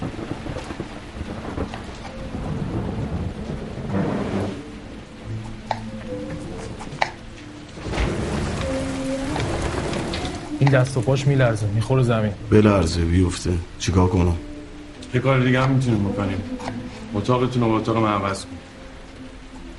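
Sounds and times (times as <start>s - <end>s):
low rumbling thunder: 0.0s - 5.2s, 7.7s - 11.8s
rain pouring: 0.0s - 19.7s
sharp drips and taps: 5.3s - 7.8s, 8.5s - 11.3s, 19.1s - 19.7s
speech: 10.7s - 14.5s, 15.1s - 18.6s.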